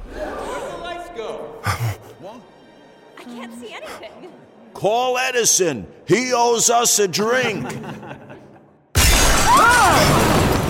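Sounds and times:
laughter: 1.6s - 2.4s, 7.2s - 8.9s
speech: 2.2s - 2.6s, 3.2s - 8.2s
glass skylight shattering: 9.0s - 10.6s.

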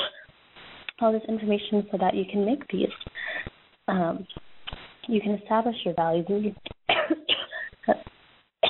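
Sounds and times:
person coughing: 0.0s - 0.3s, 6.9s - 8.6s
speech: 1.0s - 3.3s, 3.9s - 4.4s, 5.1s - 6.6s, 7.9s - 8.1s.

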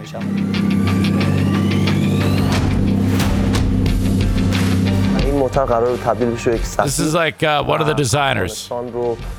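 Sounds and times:
speech: 0.0s - 0.8s, 5.5s - 9.3s
loud car engine running with a steady low throb: 0.3s - 5.4s.

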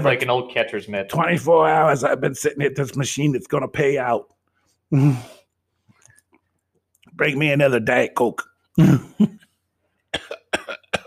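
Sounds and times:
speech: 0.0s - 5.4s, 7.2s - 9.4s
harsh wet coughing fit: 8.8s - 9.4s, 10.1s - 11.0s.

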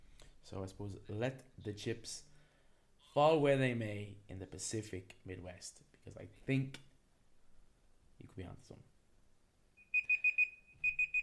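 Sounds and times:
speech: 0.5s - 2.3s, 3.1s - 6.9s, 8.2s - 8.9s
segment timer alarm high-pitched electronic beeps: 9.8s - 11.2s.

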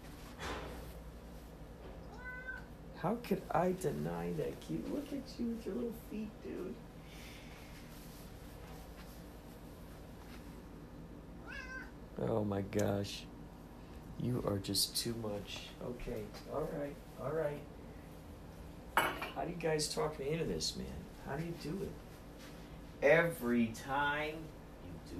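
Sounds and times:
cat meowing: 2.0s - 2.7s, 11.4s - 12.0s
speech: 3.0s - 6.9s, 12.2s - 13.3s, 14.2s - 17.7s, 19.4s - 22.0s, 23.0s - 25.1s.

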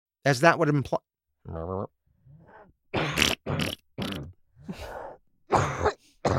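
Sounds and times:
speech: 0.2s - 2.0s
person coughing harshly: 3.0s - 4.2s, 5.5s - 6.3s.

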